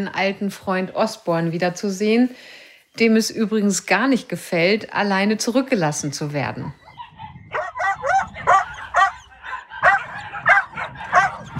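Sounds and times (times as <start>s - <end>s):
speech: 0.0s - 6.8s
dog barking excitedly: 6.8s - 11.5s.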